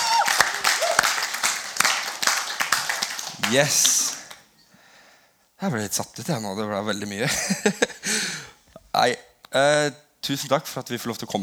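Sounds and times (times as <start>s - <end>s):
crowd applauding: 0.0s - 4.4s
speech: 3.5s - 4.0s, 5.6s - 8.2s, 9.0s - 11.4s
laughter: 7.2s - 8.5s.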